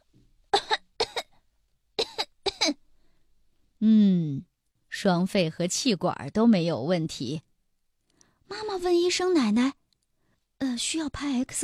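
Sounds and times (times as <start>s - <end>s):
child coughing during a stethoscope examination: 0.5s - 1.4s, 2.0s - 2.8s
speech: 5.0s - 7.5s, 8.5s - 9.8s, 10.6s - 11.6s.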